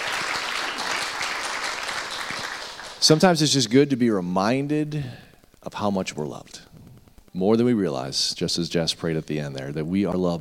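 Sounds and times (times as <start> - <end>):
audience applause at a church worship gathering: 0.0 - 3.2
speech: 3.0 - 6.7, 7.4 - 10.3.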